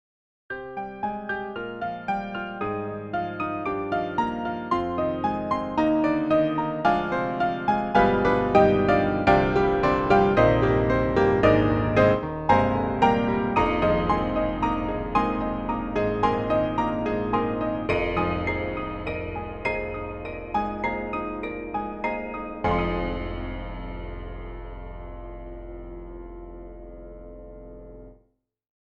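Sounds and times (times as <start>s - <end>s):
broken piano, double piano: 0.5s - 28.2s.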